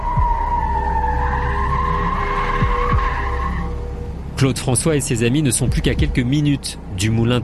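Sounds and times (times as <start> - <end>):
car tires skidding during a car chase toward Fontainebleau France: 0.0 - 5.9
low rumble: 0.0 - 6.9
speech: 4.4 - 7.4.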